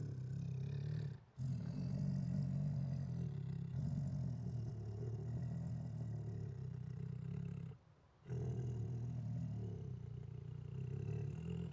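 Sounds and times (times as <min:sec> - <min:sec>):
Siberian tiger growling aggressively: 0:00.0 - 0:11.7.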